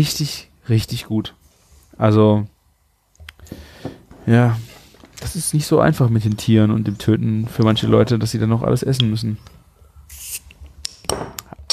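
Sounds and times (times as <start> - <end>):
speech: 0.0 - 2.5, 3.5 - 9.6
wheat beer bottle opening with a short hiss: 10.1 - 10.6.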